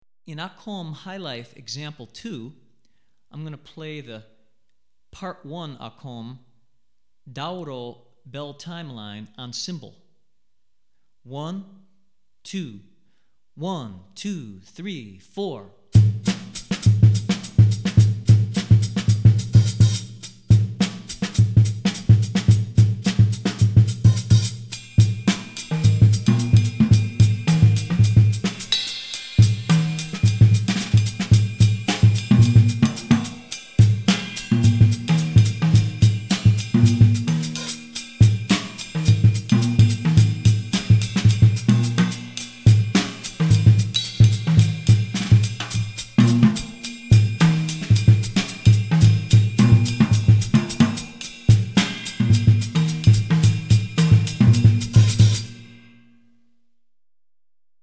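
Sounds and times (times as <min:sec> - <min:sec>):
drumset playing highlife jazz West African rhythms: 0:16.0 - 0:55.9.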